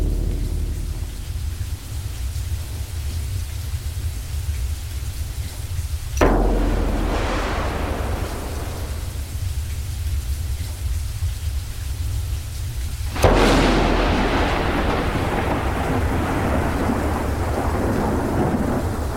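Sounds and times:
thunder crack and rumble: 0.0s - 3.2s, 6.2s - 11.4s, 13.1s - 19.1s
steady rain: 0.0s - 19.1s.

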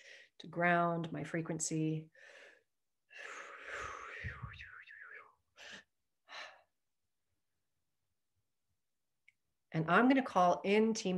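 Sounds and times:
speech: 0.4s - 2.4s, 9.8s - 11.1s
deep gentle breaths: 2.1s - 6.8s.

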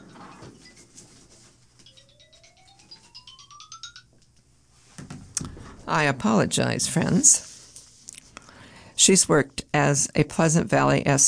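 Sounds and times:
mobile phone ringtone: 1.8s - 4.2s
speech: 5.9s - 7.5s, 9.0s - 11.2s.

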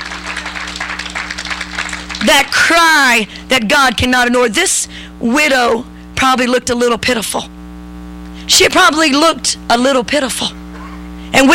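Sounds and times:
crowd clapping hands in praise of God: 0.0s - 2.8s
low electrical hum: 0.0s - 11.5s
speech: 2.2s - 7.6s, 8.5s - 10.6s, 11.3s - 11.5s.

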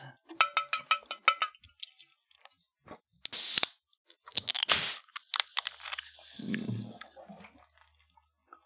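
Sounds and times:
metallic clinks and ticks: 0.4s - 1.6s
can of soda cracked open with a sharp hissing pop: 3.3s - 6.2s.

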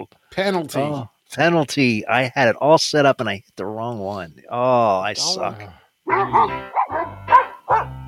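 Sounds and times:
speech: 0.4s - 6.8s
dogs barking sound effect: 6.1s - 8.0s.

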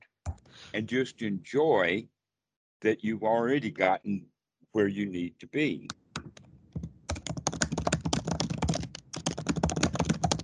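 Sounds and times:
speech: 0.7s - 2.2s, 2.8s - 6.0s
typing on a computer keyboard: 6.2s - 10.4s.

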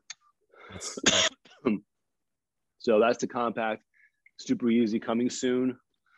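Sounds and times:
harsh raspy coughs: 0.8s - 1.8s
speech: 0.8s - 1.9s, 2.8s - 5.8s
throat-clearing grunts: 0.9s - 1.8s.

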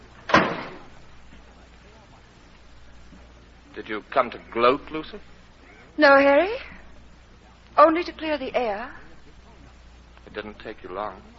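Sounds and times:
door shutting with a solid thud: 0.3s - 1.0s
speech: 3.8s - 5.3s, 6.0s - 6.7s, 7.8s - 9.0s, 10.3s - 11.3s.

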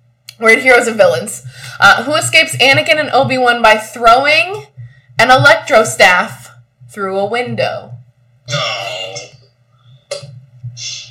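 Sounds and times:
steady low hum: 0.0s - 11.0s
speech: 0.4s - 7.9s, 8.5s - 8.8s
quiz countdown clock ticking: 1.3s - 7.8s.

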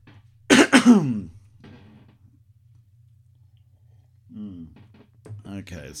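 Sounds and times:
quiet room hum: 0.0s - 5.9s
coughing: 0.5s - 1.4s
rough gravelly throat clearing: 0.5s - 1.4s
speech: 0.8s - 1.4s, 5.7s - 5.9s.

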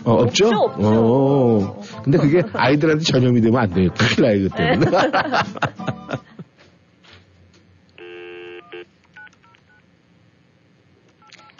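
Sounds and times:
speech: 0.0s - 6.3s
laughter: 2.0s - 3.0s, 4.0s - 6.7s
short electronic telephone dial-tone blips: 8.0s - 9.8s.

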